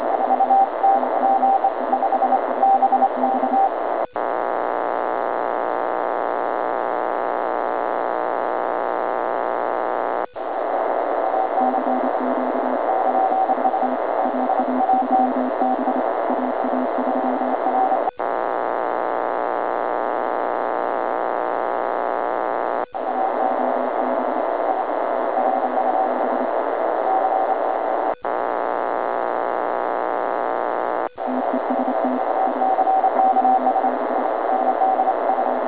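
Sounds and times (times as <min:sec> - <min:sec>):
80m amateur radio CW morse code tones: 0:00.0 - 0:05.0, 0:10.6 - 0:18.6, 0:29.7 - 0:35.6
80m amateur radio band noise: 0:00.0 - 0:35.6.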